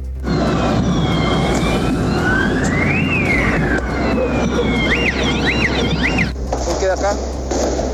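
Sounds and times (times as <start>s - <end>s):
rumbling traffic: 0.0s - 7.9s
police sirens wailing during street clashes: 0.2s - 6.4s
crowd commotion: 0.3s - 6.3s.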